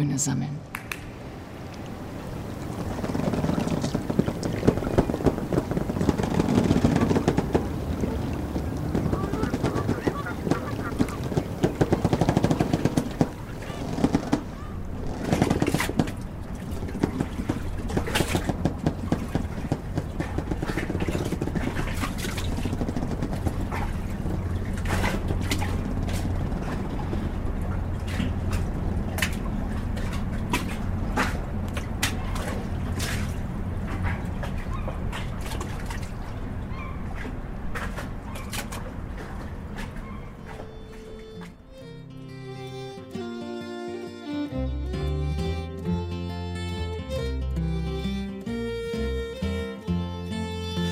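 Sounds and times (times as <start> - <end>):
speech: 0.0 - 1.0
low boat engine drone in a harbor on the Elbe river: 1.2 - 50.9
sharp knocks in a river harbor on the Elbe: 3.0 - 29.4.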